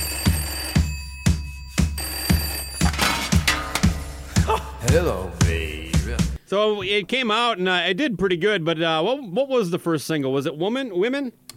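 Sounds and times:
telephone bell ringing with metallic clatter: 0:00.0 - 0:04.2
speech: 0:04.9 - 0:05.8, 0:06.5 - 0:11.4.

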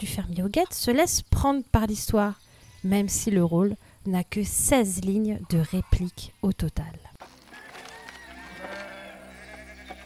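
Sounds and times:
speech: 0:00.0 - 0:07.1
sheep bleating on a farm: 0:07.6 - 0:10.0.

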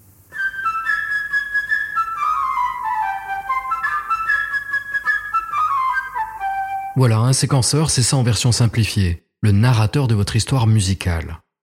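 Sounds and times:
light chirping flute playing a quick bright melody with trills: 0:00.3 - 0:07.1
speech: 0:07.0 - 0:11.4.

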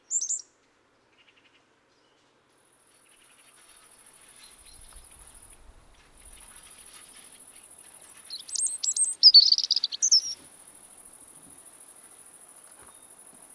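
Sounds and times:
steady high hiss: 0:03.2 - 0:13.5
European robin Erithacus rubecula singing in autumn: 0:03.6 - 0:13.5.

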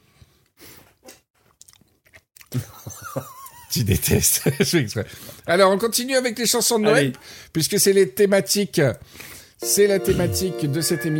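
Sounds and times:
wet sticky mouth sounds: 0:01.1 - 0:02.6
chewing of candy against the microphone: 0:01.1 - 0:02.9
speech: 0:02.5 - 0:11.1
laughter: 0:02.6 - 0:05.1.

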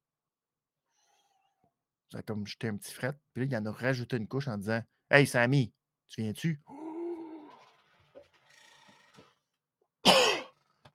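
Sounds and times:
speech: 0:02.1 - 0:06.8
person coughing: 0:10.0 - 0:10.7.

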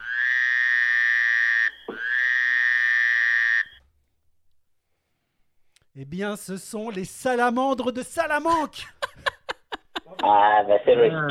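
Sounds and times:
frog croaking: 0:00.0 - 0:03.8
speech: 0:06.0 - 0:09.0, 0:10.2 - 0:11.2
laughter: 0:08.5 - 0:11.2.

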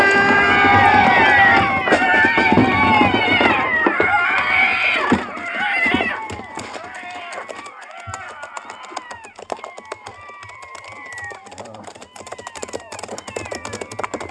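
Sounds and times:
horse-drawn wagon hitting a large rock and crashing: 0:00.0 - 0:07.6
many cats yowling and screeching: 0:00.0 - 0:14.3.

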